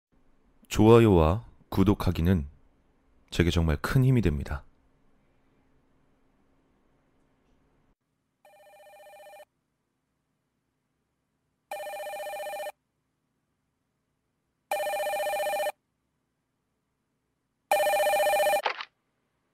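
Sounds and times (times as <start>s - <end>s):
speech: 0.7s - 2.5s, 3.3s - 4.7s
telephone ringing: 8.5s - 9.5s, 11.7s - 12.8s, 14.7s - 15.8s, 17.7s - 18.7s.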